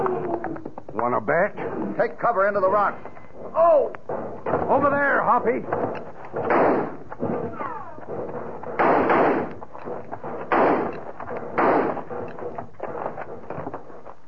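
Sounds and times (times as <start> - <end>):
rough noise: 0.0 - 14.2
speech: 1.0 - 6.9
gunfire echoing through a rocky canyon in a gunfight: 5.7 - 12.3.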